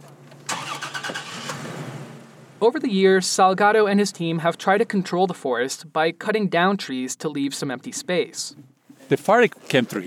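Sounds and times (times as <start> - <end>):
pickup truck engine starting: 0.4 - 2.6
speech: 2.6 - 10.0.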